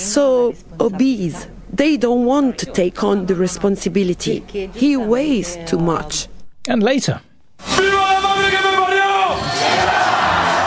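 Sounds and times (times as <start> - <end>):
speech: 0.0 - 10.0
huge crowd in Spain cheering to welcome home its World Cup winners: 7.7 - 10.6.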